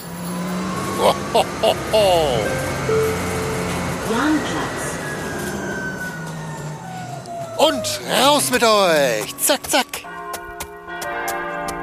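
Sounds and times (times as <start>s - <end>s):
bus engine drone: 0.0s - 10.1s
bus road rumble: 0.0s - 11.2s
laughter: 1.0s - 2.7s
speech: 1.0s - 3.4s, 4.1s - 4.8s, 7.6s - 10.1s
bright chirping tones: 2.0s - 5.0s.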